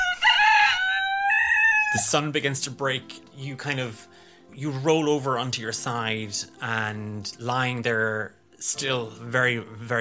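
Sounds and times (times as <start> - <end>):
rooster crowing: 0.0 - 2.0
speech: 1.9 - 10.0.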